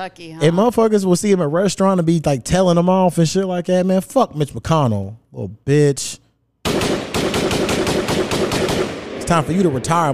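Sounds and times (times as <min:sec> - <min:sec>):
speech: 0:00.0 - 0:06.2, 0:09.3 - 0:10.1
rapid gunfire: 0:06.6 - 0:10.1.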